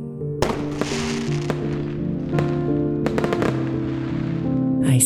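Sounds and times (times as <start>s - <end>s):
fireworks exploding: 0.4s - 4.9s.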